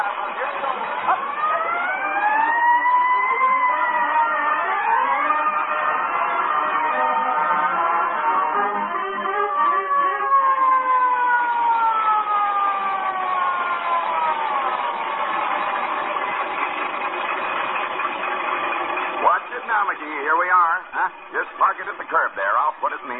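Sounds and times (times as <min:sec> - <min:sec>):
fire truck siren wailing: 0:00.0 - 0:23.1.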